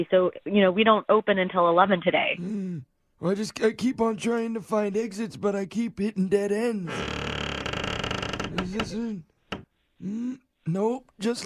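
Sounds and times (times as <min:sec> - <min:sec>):
speech: 0:00.0 - 0:07.3, 0:08.6 - 0:09.3, 0:10.0 - 0:11.4
old door hinge creaking at a storage facility: 0:06.9 - 0:09.7.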